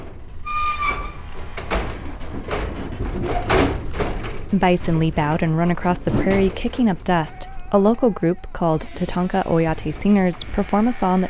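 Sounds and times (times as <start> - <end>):
heavy clanks and rattles of livestock trailer metal: 0.0 - 7.6
livestock trailer doors opening with a high metallic squeal: 0.4 - 2.1, 6.1 - 11.2
speech: 4.5 - 11.2.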